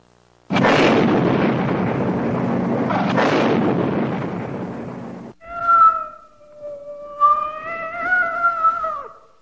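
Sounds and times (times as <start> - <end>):
roaring blast of a cardboard box bursting apart: 0.5 - 5.4
long wavering cat wail: 5.4 - 9.3.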